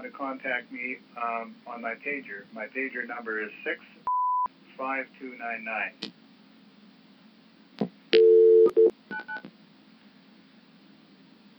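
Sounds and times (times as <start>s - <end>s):
speech: 0.0s - 4.2s, 4.8s - 6.2s
longer steady dial tone: 8.1s - 9.5s.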